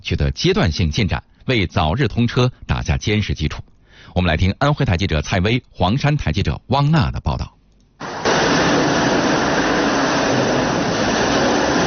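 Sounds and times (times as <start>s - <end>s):
speech: 0.0s - 7.6s
heavy machinery roaring inside railway tunnel: 8.0s - 11.8s.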